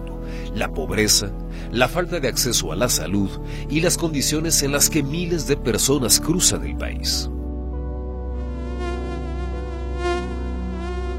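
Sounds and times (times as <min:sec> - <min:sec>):
speech: 0:00.5 - 0:07.4
mosquito buzzing: 0:08.0 - 0:11.1.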